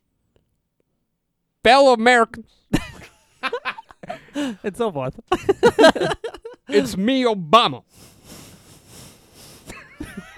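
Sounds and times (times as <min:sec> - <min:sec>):
speech: 0:01.6 - 0:02.6, 0:04.4 - 0:08.1
laughter: 0:02.8 - 0:07.0, 0:09.4 - 0:10.3
voice imitating heavy nose breathing: 0:07.9 - 0:09.8.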